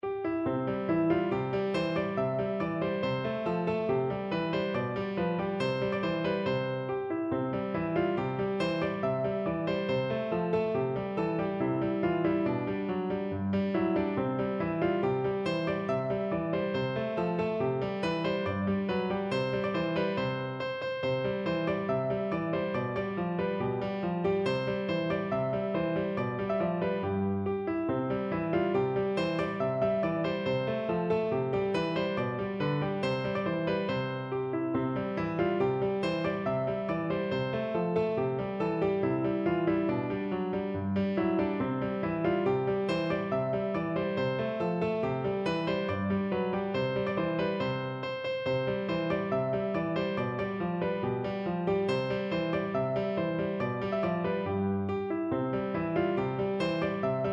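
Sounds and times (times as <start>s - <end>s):
folk tune played on piano: 0.0s - 57.3s.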